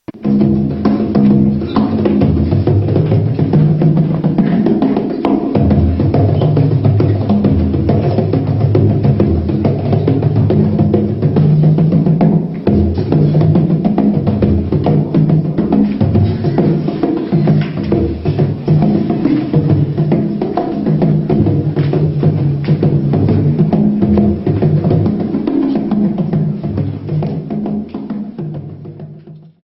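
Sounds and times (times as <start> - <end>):
bodhran drum: 0.0 - 29.6.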